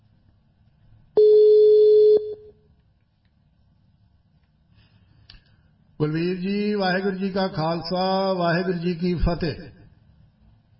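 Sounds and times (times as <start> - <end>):
faint low hum: 0.0 - 10.7
telephone ringing tone as a call is placed: 1.2 - 2.5
speech: 6.0 - 9.7.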